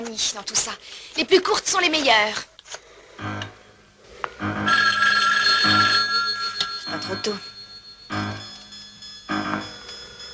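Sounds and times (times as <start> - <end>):
speech: 0.1 - 3.3, 7.1 - 7.5
outgoing telephone call ringing through the handset: 4.4 - 10.3.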